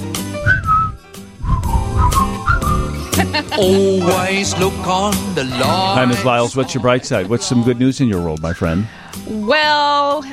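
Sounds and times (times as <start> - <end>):
rhythmic musical accompaniment: 0.0 - 9.4
person whistling a short bouncy tune: 0.4 - 3.2
laughter: 2.8 - 8.0
speech: 3.6 - 10.3.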